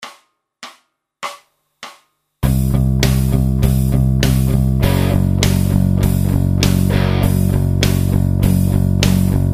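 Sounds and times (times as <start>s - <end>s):
slow guitar lick: 2.4s - 9.5s.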